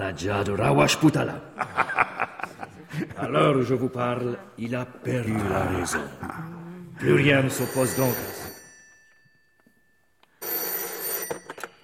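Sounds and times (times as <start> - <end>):
speech: 0.1 - 2.0, 2.9 - 8.4
laughter: 1.1 - 3.6
old-style telephone bell ringing in an office: 7.0 - 11.8.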